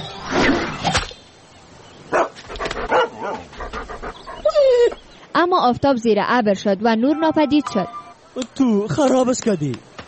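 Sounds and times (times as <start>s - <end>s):
dog barking: 2.1s - 3.5s
dog panting: 2.5s - 5.0s
dog whining: 4.1s - 5.0s
speech: 5.4s - 10.0s.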